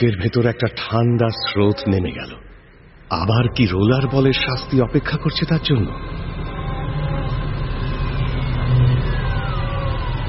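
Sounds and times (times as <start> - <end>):
speech: 0.0 - 2.5, 3.1 - 6.3
faint falling whine: 1.4 - 10.2
car engine running as the car arrives near a headquarters building at night: 2.7 - 10.2.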